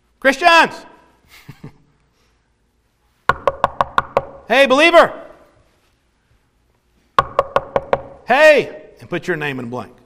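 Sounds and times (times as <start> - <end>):
speech: 0.2 - 1.6, 4.5 - 5.2, 8.3 - 10.0
sharp knocks on a door with woody resonance: 3.3 - 4.4, 7.2 - 8.3.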